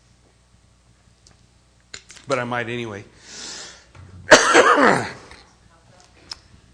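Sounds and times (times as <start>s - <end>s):
speech: 2.3s - 3.4s
person coughing: 4.3s - 5.4s.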